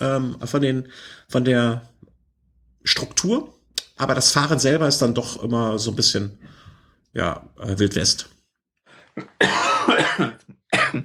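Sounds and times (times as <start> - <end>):
speech: 0.0 - 1.9, 2.8 - 8.4, 9.2 - 11.0
person coughing: 9.2 - 11.0.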